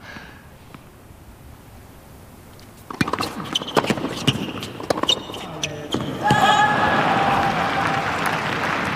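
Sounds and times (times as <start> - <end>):
tennis ball bounced on a hard court before a serve: 2.8 - 6.5
crowd and court noise: 2.9 - 8.9.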